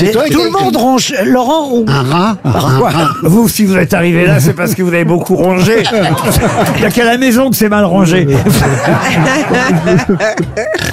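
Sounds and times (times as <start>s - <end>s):
speech: 0.0s - 10.9s
laughter: 2.4s - 3.4s, 5.6s - 7.2s, 8.3s - 10.9s
person imitating pig grunts: 10.3s - 10.9s.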